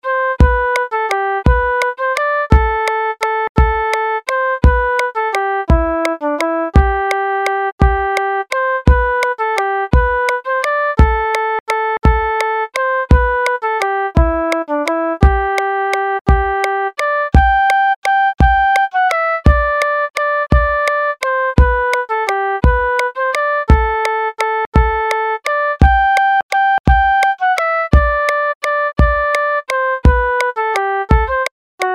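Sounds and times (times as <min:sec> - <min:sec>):
waltz music with moderate rhythm: 0:00.1 - 0:31.9.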